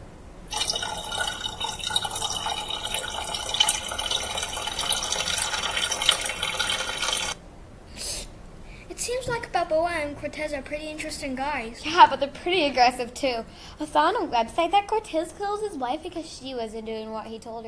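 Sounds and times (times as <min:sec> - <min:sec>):
water pouring into a container: 0:00.5 - 0:07.4
speech: 0:10.0 - 0:17.6.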